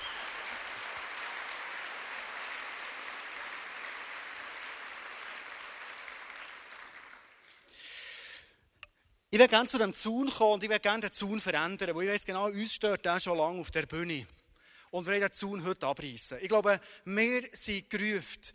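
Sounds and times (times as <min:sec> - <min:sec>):
audience applause: 0:00.0 - 0:07.6
speech: 0:09.4 - 0:18.5.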